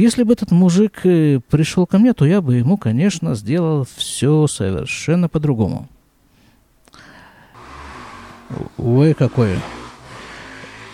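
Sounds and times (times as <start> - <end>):
speech: 0.0 - 6.0, 8.5 - 9.8
motorcycle passing on the street, muffled through a closed window: 7.6 - 10.9.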